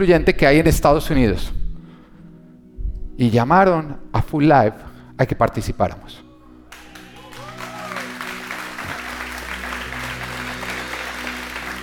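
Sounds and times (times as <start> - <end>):
speech: 0.0 - 1.6, 3.2 - 6.2
low sustained musical drone: 0.0 - 11.8
large church congregation applauding: 6.7 - 11.8.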